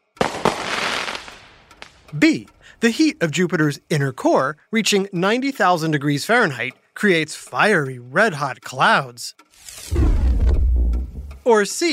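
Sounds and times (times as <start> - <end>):
fireworks bangs: 0.2 - 2.0
speech: 2.1 - 10.6, 11.4 - 11.9.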